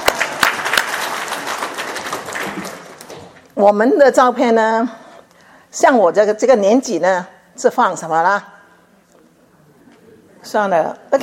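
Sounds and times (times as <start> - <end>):
audience applause: 0.0 - 3.2
speech: 3.6 - 5.0, 5.7 - 8.5, 10.4 - 11.2.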